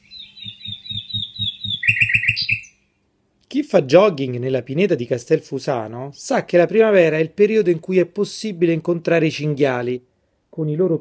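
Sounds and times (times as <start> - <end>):
nightingale singing repeated whistled notes and trills: 0.0 - 2.9
speech: 3.5 - 11.0.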